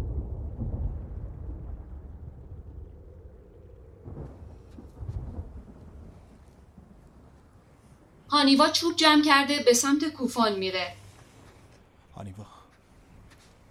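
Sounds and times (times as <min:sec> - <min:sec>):
deep rolling thunder rumbling: 0:00.0 - 0:11.5
steady rain falling at an abandoned building with no roof: 0:00.0 - 0:13.6
speech: 0:08.4 - 0:11.0.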